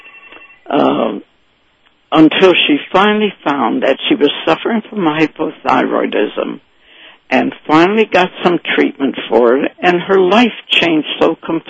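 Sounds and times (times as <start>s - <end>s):
telephone ringing: 0.0s - 1.1s
speech: 0.7s - 1.3s, 2.1s - 6.7s, 7.3s - 11.6s.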